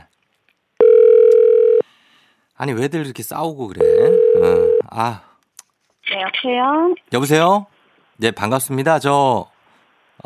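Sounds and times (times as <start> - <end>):
steady electronic telephone dial tone: 0.8 - 1.8, 3.8 - 4.8
speech: 2.6 - 5.3, 6.2 - 9.5.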